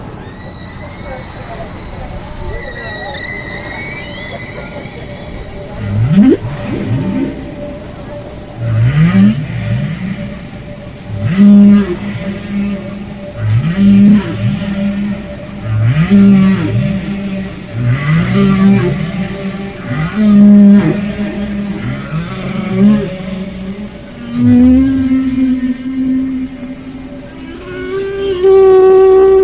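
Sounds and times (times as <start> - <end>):
humpback whales vocalizing in deep moaning calls: 0.0 - 29.4
humpback whales snorting: 5.0 - 26.0.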